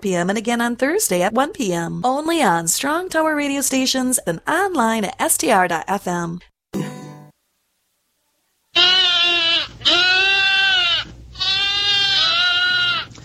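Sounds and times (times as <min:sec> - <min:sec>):
speech: 0:00.0 - 0:06.5
lambs and goats bleating: 0:08.8 - 0:13.1.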